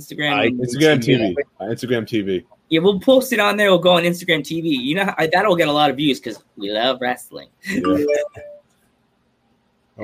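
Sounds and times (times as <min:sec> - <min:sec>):
speech: 0:00.0 - 0:08.5
laughter: 0:07.7 - 0:08.3
electronic notification beeps from a computer: 0:07.8 - 0:08.6.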